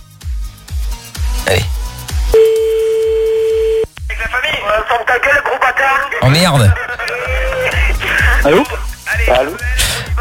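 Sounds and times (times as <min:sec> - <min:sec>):
low rhythmic music: 0:00.0 - 0:10.1
speech: 0:01.5 - 0:01.8, 0:04.9 - 0:06.9, 0:08.4 - 0:09.8
telephone ringback tone during a call: 0:02.4 - 0:03.9.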